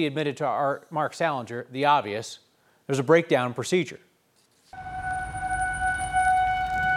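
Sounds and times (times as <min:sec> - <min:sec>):
speech: 0:00.0 - 0:04.1
outdoor tornado warning siren in Denver blaring: 0:04.8 - 0:06.9
rain: 0:04.8 - 0:06.9
rumbling bed of wind: 0:04.8 - 0:06.9.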